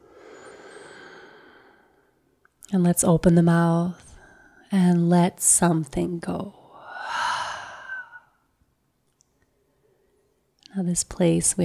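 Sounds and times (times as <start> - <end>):
long deep breath in through the nose: 0.0 - 2.0, 6.8 - 8.2
speech: 2.7 - 4.1, 4.7 - 7.2, 10.8 - 11.6.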